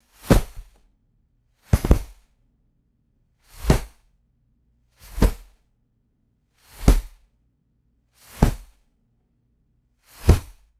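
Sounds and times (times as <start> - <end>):
heavy cotton towel dropping on hard floor: 0.2 - 0.7, 1.7 - 2.2, 5.1 - 5.5, 8.4 - 8.7, 10.2 - 10.6.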